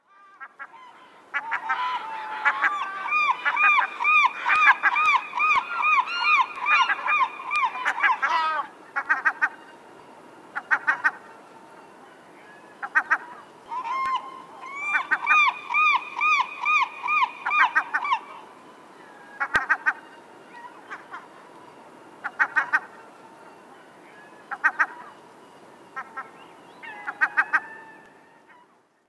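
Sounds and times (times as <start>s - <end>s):
glaucous-winged gull calling: 0.0s - 9.7s, 10.5s - 11.4s, 12.4s - 21.4s, 22.2s - 23.1s, 23.7s - 25.2s, 25.8s - 28.8s.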